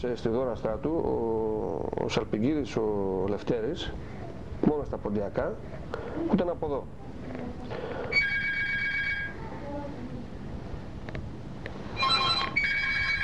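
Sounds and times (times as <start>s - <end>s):
speech: 0.0s - 7.8s
faint murmuring: 0.6s - 8.2s, 9.2s - 10.8s
telephone ringing in electronic trilling bursts: 8.1s - 9.4s, 12.0s - 13.2s.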